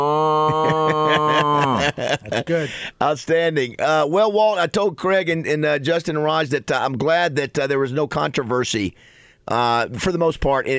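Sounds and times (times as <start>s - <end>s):
person imitating a cow mooing: 0.0s - 2.0s
speech: 0.0s - 10.7s
laughter: 0.2s - 2.7s.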